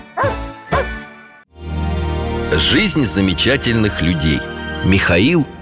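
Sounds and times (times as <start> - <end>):
sharp dog barks: 0.2 - 1.0
speech: 2.7 - 5.6.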